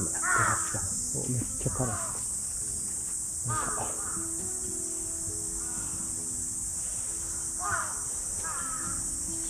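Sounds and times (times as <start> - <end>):
crows cawing: 0.0 - 1.0, 1.6 - 2.3, 3.5 - 4.5, 5.5 - 6.2, 7.2 - 9.2
constant high insect drone: 0.0 - 9.4
steady outdoor hiss: 0.0 - 9.4
speech: 1.3 - 2.2.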